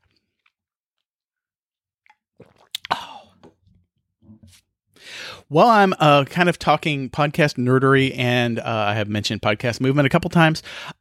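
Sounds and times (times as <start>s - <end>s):
wet mouth noises: 2.0s - 3.7s
soft swallow: 2.0s - 3.8s
slurping sip of coffee from a cup: 2.1s - 3.7s
speech: 4.5s - 10.9s
breathy exhale of satisfaction: 5.0s - 5.5s.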